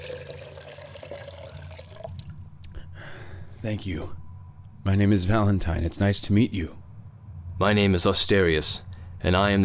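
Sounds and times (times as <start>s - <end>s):
water pouring into a container: 0.0s - 2.3s
speech: 3.6s - 4.2s, 4.8s - 6.8s, 7.6s - 9.6s.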